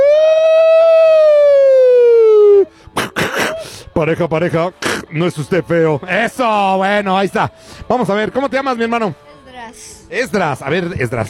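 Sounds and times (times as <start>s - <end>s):
police car siren wailing: 0.0s - 2.7s
speech: 4.0s - 11.2s.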